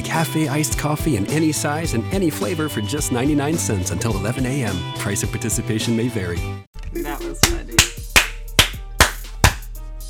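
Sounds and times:
speech: 0:00.1 - 0:07.1
hand claps marking commercial break: 0:07.4 - 0:09.7.

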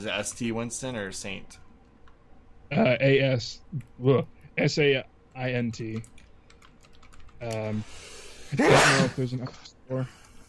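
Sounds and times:
speech: 0:00.0 - 0:01.6, 0:02.7 - 0:06.1, 0:07.4 - 0:10.2
sneeze: 0:08.5 - 0:09.2.

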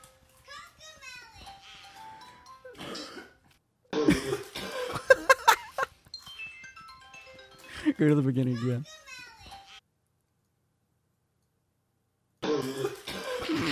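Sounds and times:
faint tonal sound: 0:00.0 - 0:12.9
young child coughing: 0:02.8 - 0:05.3, 0:12.5 - 0:13.7
speech: 0:08.0 - 0:08.9.

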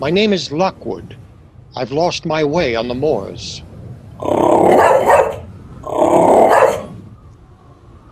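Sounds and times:
speech: 0:00.0 - 0:05.2
dog growling ominously: 0:04.2 - 0:07.0.

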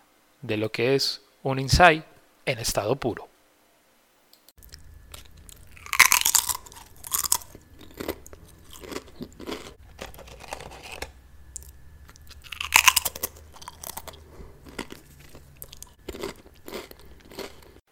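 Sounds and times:
speech: 0:00.4 - 0:03.3
crisp potato chip being chewed: 0:04.6 - 0:17.8.

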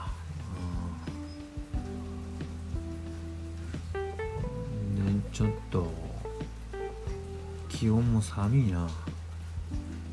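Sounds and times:
steady rain pattering on a hard surface on a cold day: 0:00.0 - 0:10.1
speech: 0:05.4 - 0:06.0, 0:07.8 - 0:09.1.

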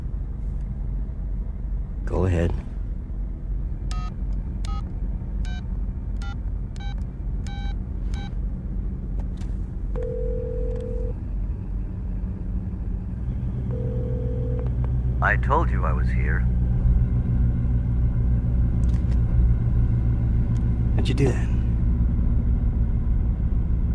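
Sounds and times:
low rumble: 0:00.0 - 0:23.9
speech: 0:02.1 - 0:02.7, 0:15.3 - 0:16.6, 0:21.0 - 0:21.6
telephone ringing tone: 0:10.0 - 0:11.1, 0:13.7 - 0:14.7
touch-tone telephone dialing beeps: 0:10.0 - 0:11.1.

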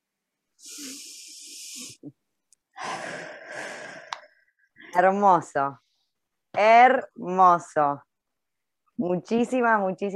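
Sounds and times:
deep breath taken during guided exercise: 0:00.6 - 0:02.1, 0:02.7 - 0:04.9
speech: 0:05.0 - 0:05.8, 0:06.6 - 0:08.1, 0:09.0 - 0:10.1.

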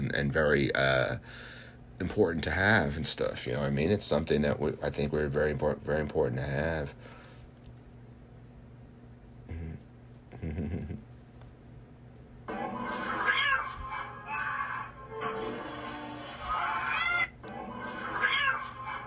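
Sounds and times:
low steady hum: 0:00.0 - 0:19.0
speech: 0:00.1 - 0:07.2, 0:10.4 - 0:11.1
cats meowing and yowling in a video on a TV: 0:12.8 - 0:15.1, 0:16.2 - 0:19.0.

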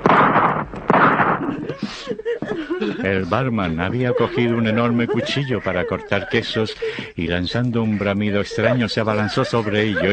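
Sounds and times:
loud gunshots with rumbling echo: 0:00.0 - 0:01.7
laughter: 0:01.4 - 0:10.1
speech: 0:01.9 - 0:10.1.

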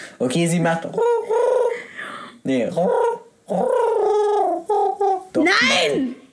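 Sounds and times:
speech: 0:00.2 - 0:01.4, 0:02.4 - 0:03.9, 0:05.4 - 0:06.2
person imitating a pigeon's cooing: 0:00.8 - 0:01.9, 0:02.7 - 0:06.2.

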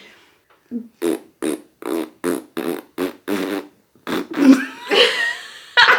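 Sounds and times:
speech: 0:00.7 - 0:01.1
rhythmic mouth-made fart noises imitating a tune: 0:01.0 - 0:04.8
laughter: 0:04.5 - 0:05.9.

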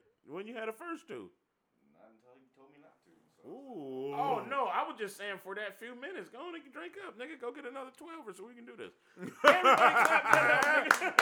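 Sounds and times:
speech: 0:00.3 - 0:11.2
people chuckling and laughing: 0:09.2 - 0:11.2
sharp hand claps: 0:09.4 - 0:11.2.

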